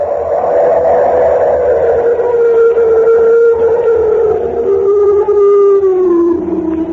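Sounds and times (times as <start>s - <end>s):
animal roaring on a high mountain pass across the Tibetan border: 0.0s - 6.9s.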